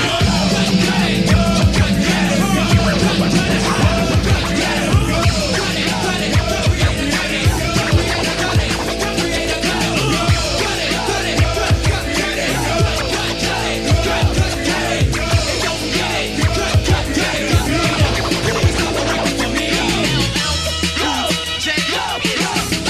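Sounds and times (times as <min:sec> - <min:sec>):
loud dense hip-hop track with punchy steady beat: 0:00.0 - 0:22.8.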